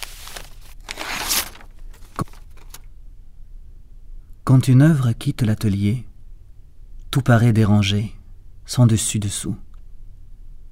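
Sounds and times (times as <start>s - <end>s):
large sheets of thick paper rustling and crinkling as artworks are wrapped: 0.0s - 2.8s
speech: 4.5s - 6.1s, 7.1s - 9.7s.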